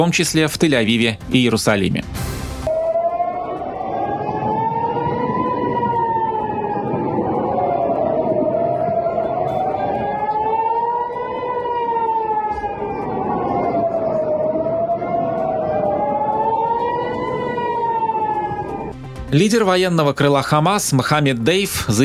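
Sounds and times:
speech: 0.0 - 2.4, 19.3 - 22.0
rumbling background: 0.0 - 22.0
air raid warning sirens wailing: 2.6 - 19.4.

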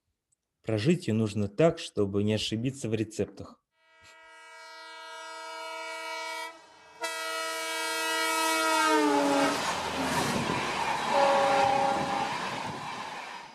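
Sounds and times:
speech: 0.7 - 3.6
train whine slowing on arrival at station: 4.4 - 13.5
broad rumbling rail noise: 6.7 - 13.5.

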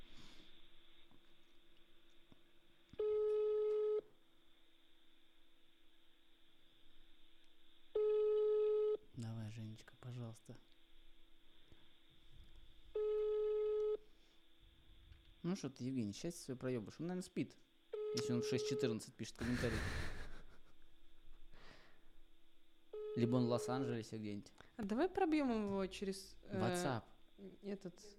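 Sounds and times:
outgoing phone call ringback tone: 3.0 - 4.0, 8.0 - 9.0, 13.0 - 14.0, 23.0 - 24.0
speech: 9.8 - 10.8, 15.5 - 20.2, 23.2 - 28.1.

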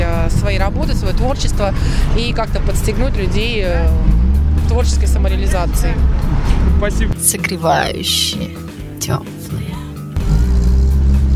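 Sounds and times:
loud car engine roaring at a car enthusiasts' meetup beside a shopping centre: 0.0 - 7.2, 10.1 - 11.3
speech: 0.8 - 9.4.

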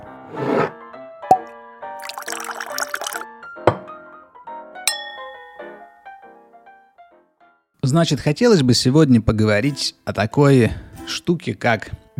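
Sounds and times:
drink pouring into a glass: 2.0 - 3.2
glasses clinking: 2.0 - 3.2, 4.9 - 5.9
speech: 7.9 - 12.1.

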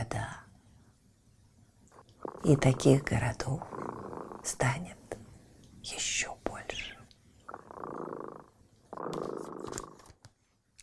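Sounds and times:
cat purring: 1.9 - 10.1
speech: 2.4 - 5.0, 5.8 - 6.8.

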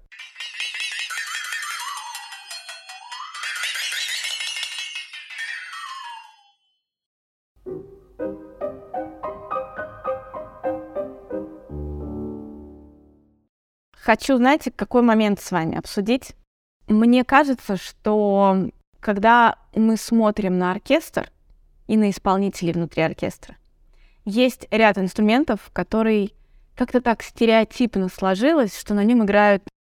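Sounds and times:
flexatone gliding tone: 0.0 - 6.7
speech: 14.1 - 23.6, 24.2 - 29.7.

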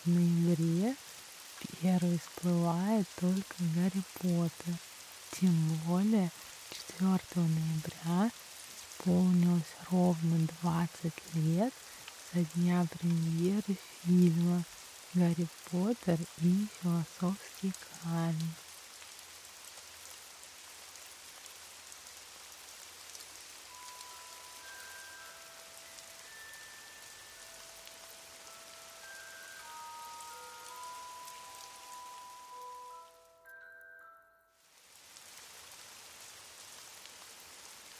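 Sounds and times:
speech: 0.0 - 8.4, 9.0 - 18.6
steady rain falling: 0.0 - 33.8, 34.6 - 37.9
soft sustained tonal notes: 23.7 - 34.6.

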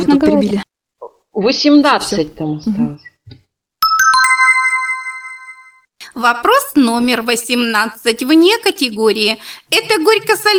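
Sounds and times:
speech: 0.0 - 0.6, 1.4 - 3.1, 6.2 - 10.5
mobile phone ringtone: 3.8 - 5.9.

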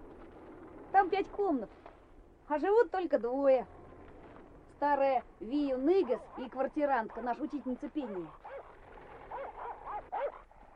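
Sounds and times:
speech: 1.0 - 1.9, 2.5 - 3.8, 4.8 - 8.4
dog barking angrily: 5.8 - 10.7.

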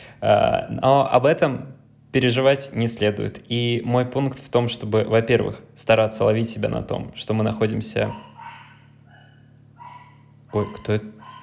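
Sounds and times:
low electrical hum: 0.0 - 11.4
speech: 0.2 - 8.3, 10.5 - 11.1
dog barking: 8.0 - 11.4.

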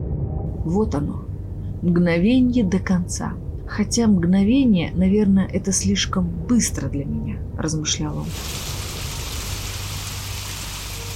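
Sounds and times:
faint low rumble: 0.0 - 8.2
speech: 0.6 - 8.7
heavy rain pouring: 8.3 - 11.1.

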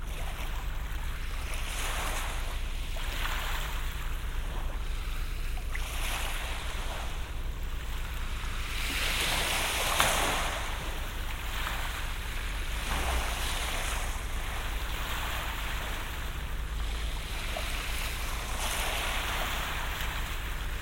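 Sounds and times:
low rumble of warm wind: 0.0 - 20.8
surf washing ashore on a seashore: 0.0 - 20.8.

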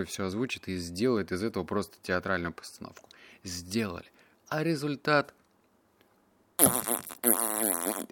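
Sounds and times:
speech: 0.0 - 5.4, 6.6 - 8.1
loud fart sounds: 6.6 - 8.1.

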